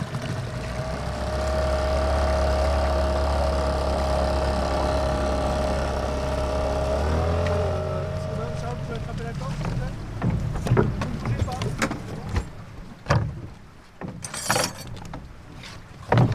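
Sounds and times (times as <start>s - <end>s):
low steady rumble: 0.0s - 15.5s
people talking: 8.2s - 10.0s, 11.0s - 12.5s
wooden knocks and clunks aboard a moored fishing boat on a river: 9.4s - 16.3s.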